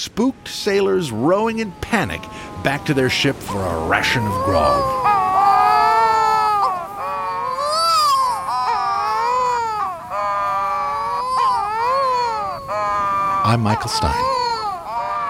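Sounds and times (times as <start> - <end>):
speech: 0.0 - 5.2, 13.5 - 14.4
wedge-tailed shearwaters wailing in duet face to face with puffed-up throats: 0.0 - 15.2.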